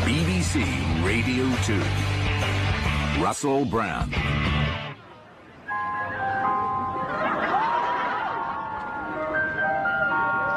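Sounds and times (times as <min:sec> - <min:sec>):
speech: 0:00.1 - 0:02.2, 0:03.2 - 0:04.5
ice cream van chime in Blackpool: 0:05.7 - 0:10.5
voices and laughter: 0:06.7 - 0:09.0.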